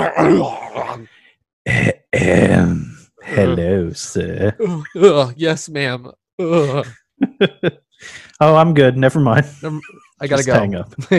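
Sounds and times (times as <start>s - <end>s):
person imitating throat clearing: 0.0s - 1.1s, 1.7s - 3.0s, 4.6s - 5.4s, 6.4s - 7.0s
speech: 0.0s - 2.8s, 3.4s - 11.1s
laughter: 6.4s - 7.8s.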